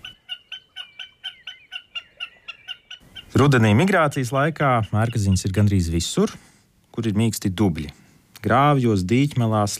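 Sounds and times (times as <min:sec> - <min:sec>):
common snipe chipping calls: 0:00.0 - 0:06.1
speech: 0:03.3 - 0:09.7.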